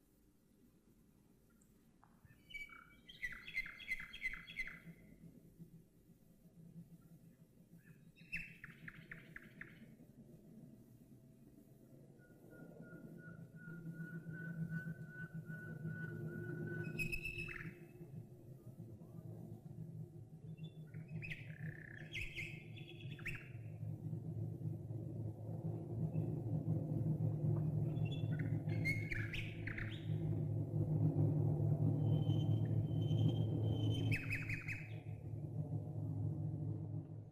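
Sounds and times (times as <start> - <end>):
nightingale singing: 2.3 - 4.9, 16.8 - 17.8, 20.6 - 23.6, 27.9 - 30.3, 32.1 - 35.1
squadron of World War II bomber aircraft droning overhead: 10.9 - 37.3.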